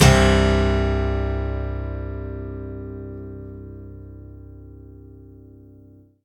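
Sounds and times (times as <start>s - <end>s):
acoustic guitar impact: 0.0s - 4.4s.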